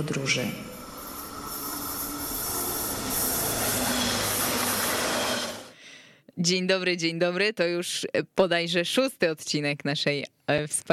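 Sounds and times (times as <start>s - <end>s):
speech: 0.0s - 0.7s, 6.4s - 10.9s
train pulling out of a station: 0.0s - 5.7s.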